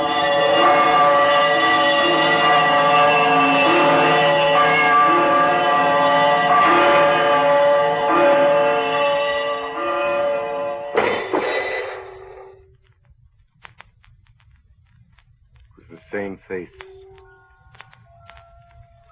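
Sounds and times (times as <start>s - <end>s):
old disused hanging bell swinging and ringing in a room: 0.0s - 11.4s.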